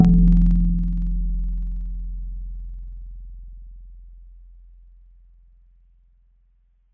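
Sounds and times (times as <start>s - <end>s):
mallet note in C: 0.0s - 1.6s.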